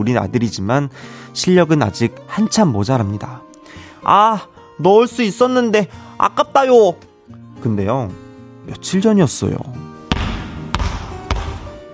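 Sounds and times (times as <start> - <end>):
speech: 0.0 - 9.9
child bouncing a basketball on a hard floor: 10.1 - 11.8.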